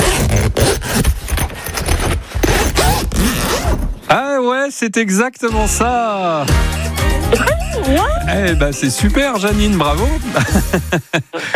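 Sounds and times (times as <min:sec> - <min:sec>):
camping tent zipper pulled, metal teeth buzzing along fabric: 0:00.0 - 0:04.0
speech: 0:04.1 - 0:11.5
laughter: 0:06.4 - 0:09.2, 0:10.1 - 0:11.5.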